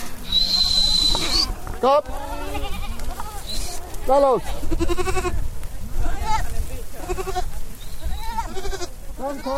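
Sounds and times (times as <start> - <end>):
several goats and lambs bleating: 0.2 - 5.4, 6.1 - 9.5
speech: 1.8 - 2.7, 4.1 - 5.5, 9.2 - 9.5.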